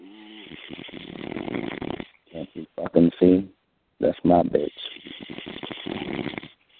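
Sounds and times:
person snoring: 0.0 - 2.7, 4.7 - 6.6
speech: 2.5 - 4.9.

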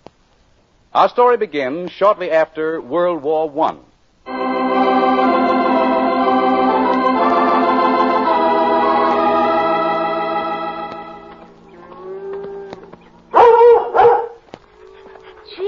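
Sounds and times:
speech: 0.9 - 4.5
sustained music: 4.3 - 11.8
German shepherd whining yips: 11.7 - 15.6
German shepherd barking: 13.3 - 14.4.

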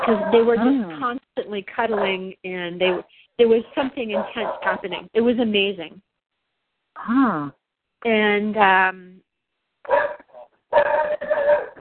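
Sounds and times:
dogs barking with high-pitched yelping barks: 0.0 - 0.8, 1.8 - 2.2, 2.8 - 3.1, 4.1 - 4.9, 9.9 - 11.7
speech: 0.0 - 6.1, 7.0 - 9.2.

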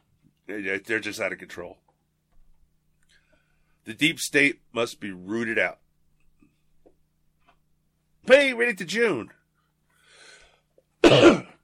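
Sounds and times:
speech: 0.5 - 1.8, 3.8 - 5.8, 8.2 - 9.4, 11.1 - 11.4
loud rough throaty cough: 11.0 - 11.6.

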